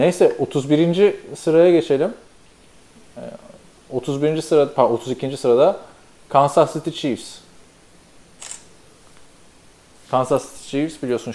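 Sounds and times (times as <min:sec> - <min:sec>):
speech: 0:00.0 - 0:02.2, 0:03.2 - 0:07.4, 0:10.1 - 0:11.3
faint hiss: 0:00.0 - 0:11.3
camera shutter click as a photo is taken: 0:08.4 - 0:08.7.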